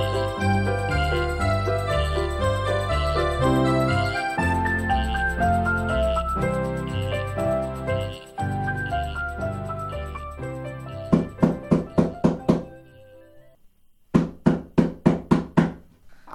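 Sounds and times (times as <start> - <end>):
soft music: 0.0 - 13.6
knocking on a door: 11.1 - 12.7, 14.1 - 15.9.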